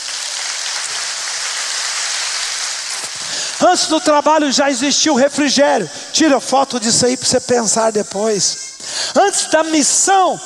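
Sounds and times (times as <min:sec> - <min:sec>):
large audience applause: 0:00.0 - 0:03.6
speech: 0:03.6 - 0:10.4.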